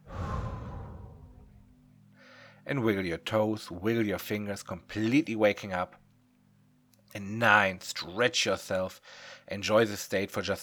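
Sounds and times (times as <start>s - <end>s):
deep breath exhaled in a long sigh: 0.0s - 2.6s
speech: 2.7s - 6.0s, 7.1s - 10.6s.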